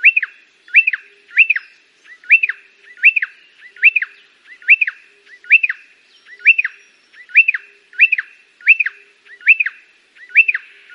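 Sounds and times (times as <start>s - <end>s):
pardalote song with two-part whistled chirp: 0.0s - 10.9s.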